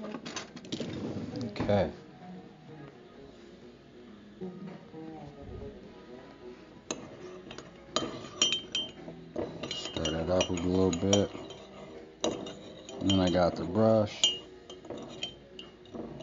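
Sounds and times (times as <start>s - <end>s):
speech: 1.7s - 2.0s, 13.4s - 14.3s
utensil clinking against a glass or ceramic dish while stirring seasoning: 6.9s - 16.2s.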